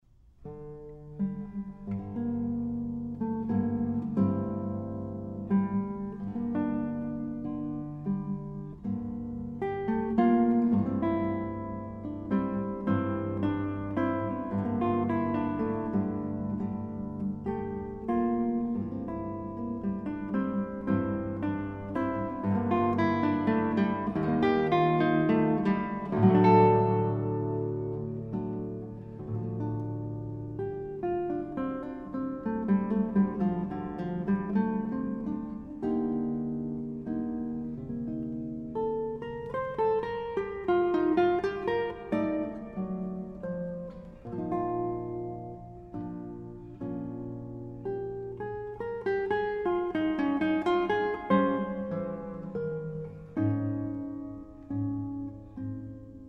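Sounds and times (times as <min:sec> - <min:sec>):
classical guitar sonata fragment: 0:00.1 - 0:56.2.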